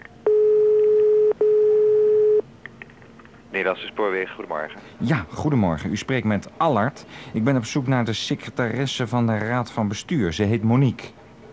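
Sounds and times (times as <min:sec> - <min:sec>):
telephone call tones on a call to an office line: 0:00.2 - 0:02.5
speech: 0:03.6 - 0:11.2.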